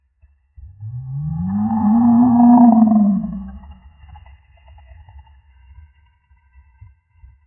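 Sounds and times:
realistic cinematic jaguar: 0.8s - 3.7s.

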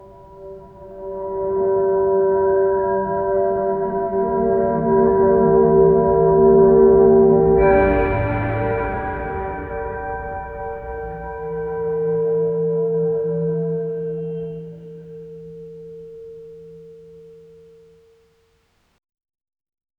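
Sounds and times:
deep meditative instrumental music: 0.0s - 18.1s.

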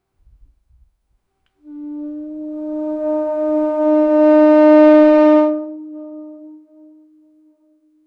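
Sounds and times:
celtic horn being blown: 1.6s - 8.0s.

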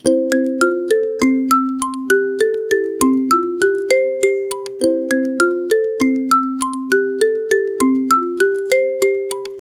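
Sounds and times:
catchy and simple ringtone melody: 0.0s - 9.6s.

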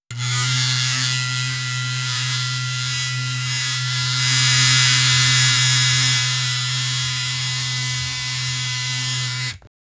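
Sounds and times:
razor blade shaving for grooming: 0.0s - 9.7s.

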